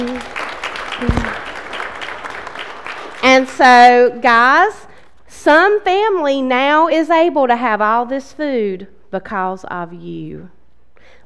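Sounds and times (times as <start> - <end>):
crowd applause: 0.0 - 3.7
speech: 3.4 - 10.6.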